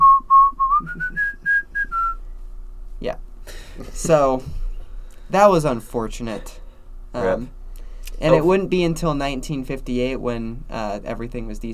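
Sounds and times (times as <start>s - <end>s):
person whistling a short tune: 0.0s - 2.2s
speech: 4.0s - 4.6s, 5.3s - 7.6s, 8.2s - 11.7s.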